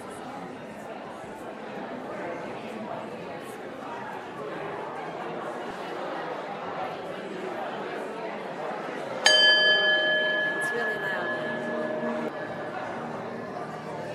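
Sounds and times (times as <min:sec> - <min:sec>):
murmur of many people chatting in a room: 0:00.0 - 0:14.1
single bright bell strike: 0:09.2 - 0:14.1.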